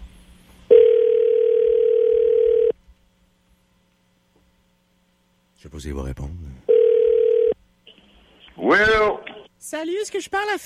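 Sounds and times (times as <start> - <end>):
telephone ringing on the line while a call is placed: 0.7 - 2.7, 6.7 - 7.6
speech: 5.8 - 6.7, 8.6 - 10.6.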